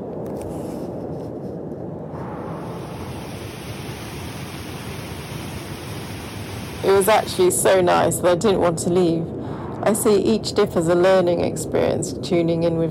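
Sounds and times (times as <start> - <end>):
waterfall rushing: 2.6 - 7.7
speech: 6.8 - 12.9.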